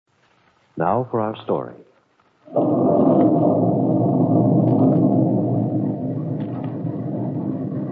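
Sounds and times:
speech: 0:00.8 - 0:01.9, 0:02.5 - 0:05.2
rumbling thunder from a breaking storm: 0:02.5 - 0:07.9.

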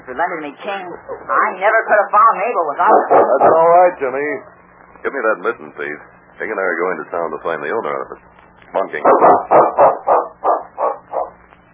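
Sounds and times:
speech: 0:00.1 - 0:09.9
big dog barking: 0:02.8 - 0:03.8, 0:09.0 - 0:11.4.

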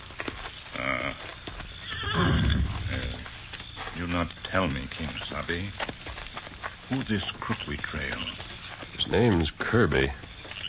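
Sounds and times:
faint hoof clops on hard ground: 0:00.0 - 0:10.6
horse restless stamping: 0:01.4 - 0:10.6
horse neighing and whinnying: 0:01.8 - 0:03.2
speech: 0:04.5 - 0:06.1, 0:06.9 - 0:10.3.

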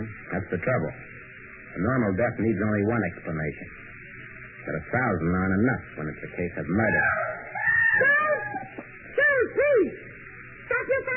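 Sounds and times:
speech: 0:00.0 - 0:01.1, 0:01.8 - 0:03.9, 0:04.7 - 0:08.8
person screaming in a room downstairs: 0:06.9 - 0:09.9.

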